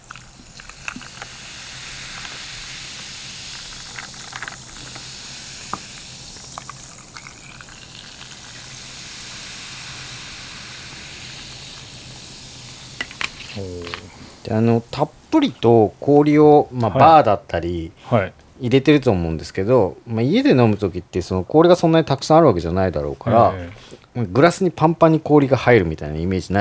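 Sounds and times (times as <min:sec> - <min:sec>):
carbonated water being poured and fizzing in a glass: 0:00.0 - 0:17.2
speech: 0:13.6 - 0:26.5.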